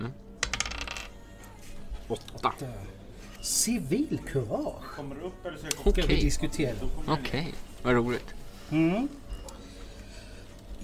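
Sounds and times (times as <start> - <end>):
die tumbling across a hard tabletop: 0.4 - 1.2
speech: 2.1 - 9.2.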